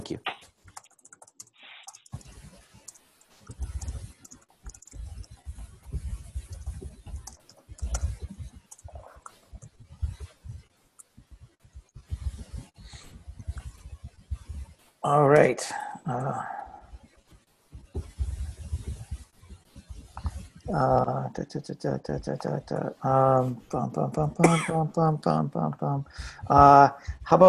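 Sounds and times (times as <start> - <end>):
speech: 0.0 - 0.3, 15.0 - 16.5, 20.7 - 27.4
typing on a computer keyboard: 0.7 - 5.4, 6.4 - 9.7.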